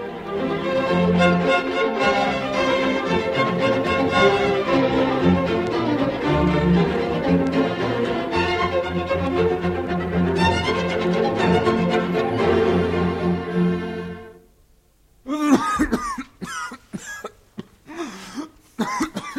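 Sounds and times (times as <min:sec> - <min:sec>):
music: 0:00.0 - 0:14.6
person coughing in harsh hacking fits: 0:15.3 - 0:19.3.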